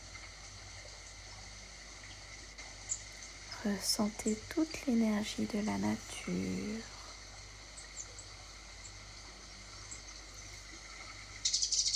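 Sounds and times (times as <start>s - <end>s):
small stream flowing: 0.0s - 11.9s
speech: 3.6s - 7.0s.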